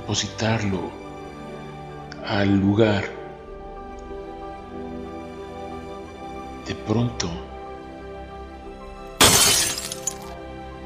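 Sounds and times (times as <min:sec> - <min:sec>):
speech: 0:00.1 - 0:01.0, 0:02.2 - 0:03.2, 0:06.7 - 0:07.5
glass laboratory flask shattering after being dropped: 0:09.2 - 0:10.3
tinkling shards of a glass laboratory flask scattering: 0:09.2 - 0:10.3.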